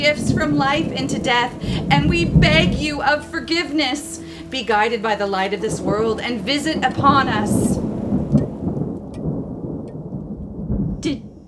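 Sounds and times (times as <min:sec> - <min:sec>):
speech: 0:00.0 - 0:07.7
deep rolling thunder: 0:00.0 - 0:11.4
steady rain: 0:00.0 - 0:11.4.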